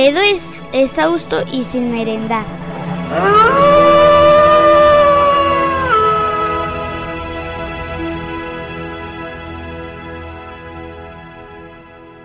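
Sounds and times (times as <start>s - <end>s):
speech: 0.0s - 3.8s
wolf howling: 2.8s - 7.4s.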